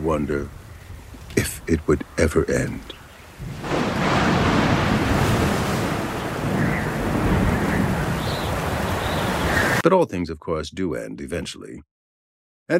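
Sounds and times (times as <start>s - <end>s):
speech: 0.0s - 0.6s, 1.7s - 3.7s, 9.8s - 11.9s
driving rain in a storm: 0.0s - 9.8s
steady howling wind in a storm: 0.0s - 9.8s
crashing waves in a storm: 3.4s - 9.8s.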